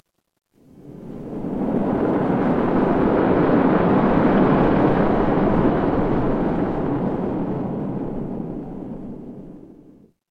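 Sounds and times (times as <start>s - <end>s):
ocean ambience: 0.6s - 10.0s.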